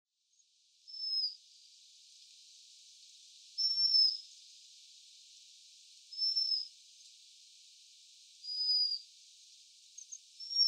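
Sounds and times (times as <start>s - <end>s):
quiet hiss: 0.2s - 10.6s
Japanese waxwing giving thin high sibilant calls in Tottori: 0.9s - 1.4s, 3.6s - 4.2s, 6.1s - 6.7s, 8.4s - 9.1s, 10.0s - 10.6s.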